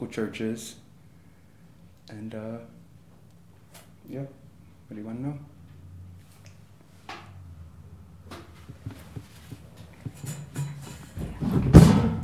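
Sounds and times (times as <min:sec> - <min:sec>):
speech: 0:00.0 - 0:00.8, 0:02.1 - 0:02.8, 0:04.1 - 0:05.5
chair being shifted with knocks and creaks: 0:08.2 - 0:12.2.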